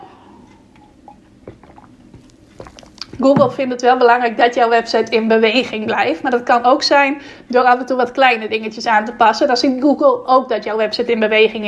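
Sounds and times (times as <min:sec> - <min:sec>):
person sipping and swallowing water: 0:00.2 - 0:03.2
speech: 0:03.2 - 0:11.6.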